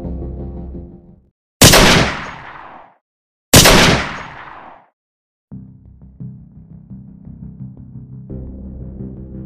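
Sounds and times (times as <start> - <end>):
gunshots with long tails: 1.6 - 2.9, 3.5 - 4.9.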